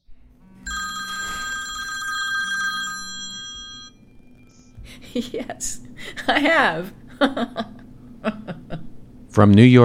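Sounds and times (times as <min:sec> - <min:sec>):
telephone bell ringing: 0:00.6 - 0:04.1
faint electronic chirp: 0:03.6 - 0:04.8
laughter: 0:04.9 - 0:09.0
speech: 0:05.2 - 0:08.4, 0:09.4 - 0:09.8.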